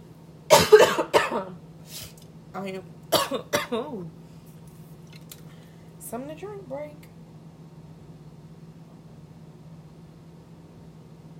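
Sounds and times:
harsh coughs from one person: 0.5 - 1.6, 3.1 - 3.9
speech: 1.4 - 4.2, 6.1 - 7.1.

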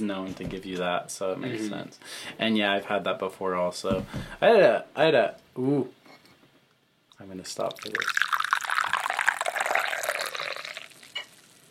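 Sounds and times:
speech: 0.0 - 6.0, 7.2 - 8.2
tea pouring into a Japanese-made glass: 7.6 - 11.7.

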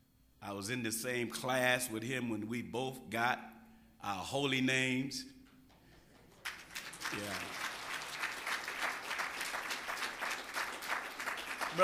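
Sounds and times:
speech: 0.4 - 5.4, 7.1 - 7.6
light applause from an audience: 6.1 - 11.8.

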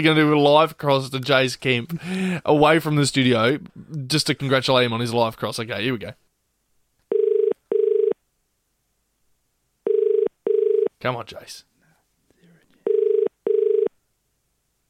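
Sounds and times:
speech: 0.0 - 6.2, 11.0 - 11.7
telephone ringback tone double rings on an outgoing call: 7.1 - 8.2, 9.9 - 10.9, 12.8 - 13.9.

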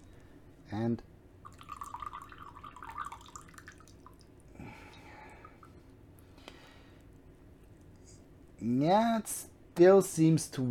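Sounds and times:
speech: 0.7 - 1.2, 8.6 - 10.6
water draining out of a coffee brewer during a second brew of tea: 1.4 - 5.8.

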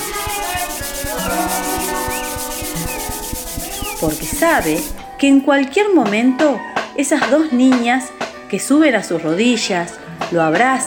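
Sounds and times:
hand sanding on wood in a small workshop in Paris: 0.0 - 5.2
faint music: 0.0 - 10.8
speech: 4.0 - 10.8.

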